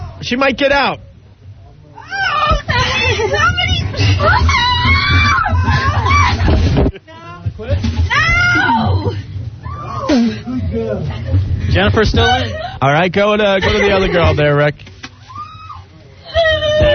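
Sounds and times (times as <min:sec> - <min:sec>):
speech: 0:00.2 - 0:01.1, 0:03.2 - 0:05.8, 0:10.8 - 0:14.9
woman screaming and wailing: 0:02.0 - 0:06.6, 0:08.1 - 0:10.3, 0:15.3 - 0:16.9
laughter: 0:02.6 - 0:07.3, 0:13.4 - 0:14.6.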